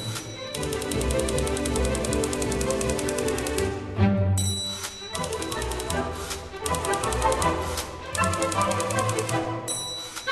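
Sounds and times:
typewriter clacking: 0.0 - 3.7, 4.7 - 10.3
full orchestra playing: 0.0 - 10.3
typewriter carriage-return bell ding: 4.4 - 5.9, 9.7 - 10.3.

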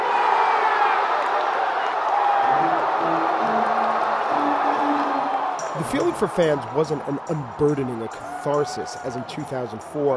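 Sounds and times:
stadium crowd cheering World Series final out: 0.0 - 10.1
horn-like tones: 2.4 - 6.9
speech: 5.9 - 10.1.

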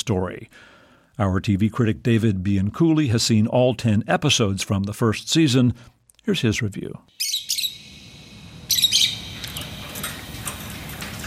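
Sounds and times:
speech: 0.1 - 7.3
caged birds chirping: 7.1 - 10.7
low steady hum: 7.2 - 11.2.

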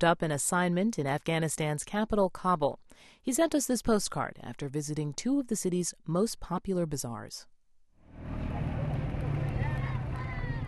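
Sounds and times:
speech: 0.0 - 7.5
busy street noise in Kabul: 8.1 - 10.6
small Chinese motorcycle engine droning in Kabul: 8.1 - 10.6
indistinct voices: 8.3 - 10.6.

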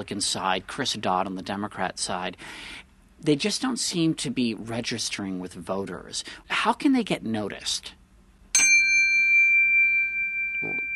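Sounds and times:
speech: 0.0 - 8.0
Zen metal chime struck and ringing: 8.6 - 10.9.

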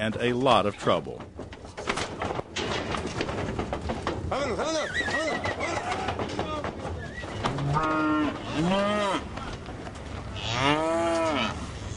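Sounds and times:
speech: 0.0 - 1.4, 4.5 - 5.2
clanking: 0.0 - 10.4
herd of cattle mooing: 7.5 - 9.3, 10.3 - 11.6.

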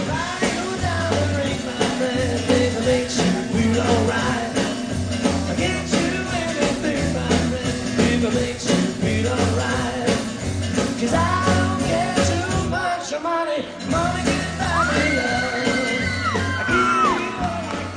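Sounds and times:
crowd of young female fans singing along: 0.0 - 17.9
live concert music with a steady pounding beat: 0.0 - 17.9
young female fans screaming and whooping: 14.5 - 17.9.

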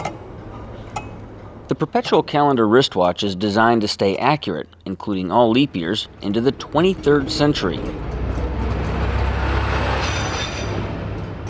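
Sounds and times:
speech: 1.7 - 8.2
train passing through a station: 5.7 - 11.4
faint metallic squeal of wheels on rails: 10.0 - 10.8.

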